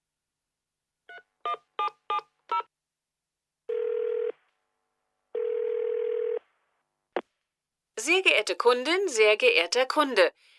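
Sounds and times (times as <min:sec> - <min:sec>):
long phone ringing tones: 0:03.7 - 0:04.4, 0:05.4 - 0:06.4
speech: 0:08.0 - 0:10.5.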